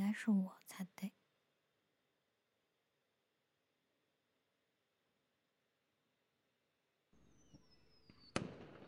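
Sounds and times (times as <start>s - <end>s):
speech: 0.1s - 1.1s
firework whistling as it climbs: 7.2s - 8.8s.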